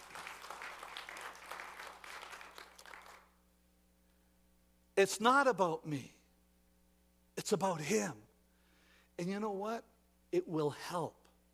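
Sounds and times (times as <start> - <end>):
audience clapping: 0.0 - 3.4
low hum: 0.0 - 11.5
speech: 5.0 - 6.2, 7.5 - 8.3, 9.2 - 11.2.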